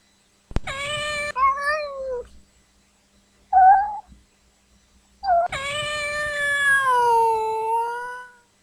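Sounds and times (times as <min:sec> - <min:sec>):
frightened cat meowing: 0:00.7 - 0:02.3, 0:03.6 - 0:04.1, 0:05.2 - 0:08.4.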